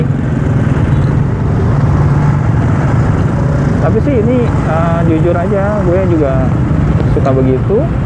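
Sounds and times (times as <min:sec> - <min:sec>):
car engine running with a low rumble: 0:00.0 - 0:08.0
speech: 0:03.9 - 0:08.0.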